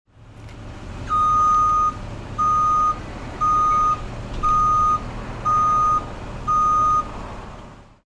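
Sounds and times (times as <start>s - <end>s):
ambulance backup alarm: 1.1s - 7.1s.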